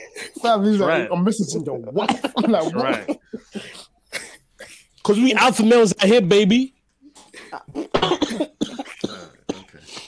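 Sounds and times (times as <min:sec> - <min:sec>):
speech: 0:00.4 - 0:03.8, 0:05.1 - 0:06.8
laughter: 0:02.0 - 0:04.4
fit of harsh raspy coughing: 0:02.5 - 0:04.9, 0:07.6 - 0:10.0.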